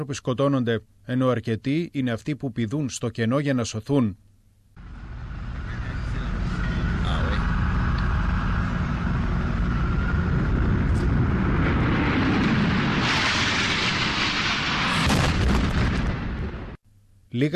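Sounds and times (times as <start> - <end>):
speech: 0.0 - 4.3, 17.4 - 17.5
heavy continuous low roar of a large aircraft: 4.8 - 15.3
airplane crash and explosion: 9.7 - 16.8.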